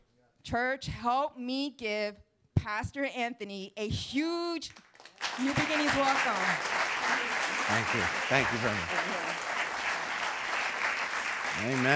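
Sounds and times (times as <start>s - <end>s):
speech: 0.4s - 9.2s, 11.6s - 11.9s
church congregation applauding: 4.7s - 11.9s.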